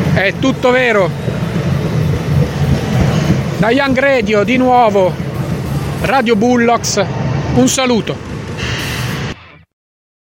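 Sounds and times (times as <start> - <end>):
train rumbling at a railway station: 0.0 - 9.4
speech: 0.2 - 1.3, 3.6 - 5.2, 6.0 - 8.7.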